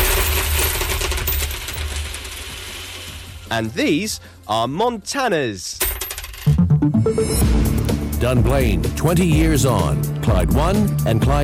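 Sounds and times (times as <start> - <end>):
copper coins clattering and jingling as they are poured out: 0.0 - 3.4, 5.8 - 6.6
speech: 3.5 - 5.9, 6.8 - 7.6, 8.2 - 11.4.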